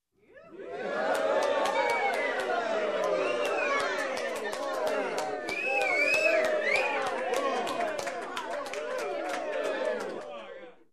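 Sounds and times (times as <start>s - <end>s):
crowd applauding: 0.7s - 10.8s
crowd whistling: 1.6s - 7.8s.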